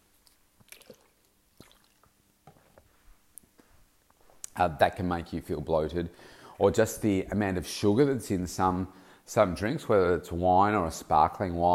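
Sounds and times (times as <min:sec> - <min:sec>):
person sipping water with wet slurping and mouth clicks: 0:00.2 - 0:02.2
speech: 0:04.6 - 0:11.7.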